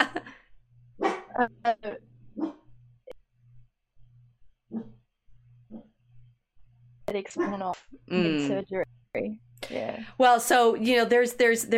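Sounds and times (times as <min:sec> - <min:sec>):
laughter: 0:00.0 - 0:00.3
low steady hum: 0:00.0 - 0:11.7
dog barking: 0:01.0 - 0:01.4, 0:02.4 - 0:02.6, 0:04.7 - 0:05.0
speech: 0:01.4 - 0:01.9, 0:07.2 - 0:11.7.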